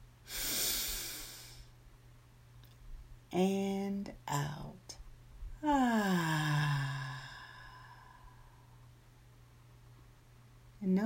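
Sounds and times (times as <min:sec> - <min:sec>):
slow deep in-breath during a guided breathing exercise: 0:00.2 - 0:01.7, 0:05.6 - 0:08.8
speech: 0:03.3 - 0:04.7, 0:05.6 - 0:06.6.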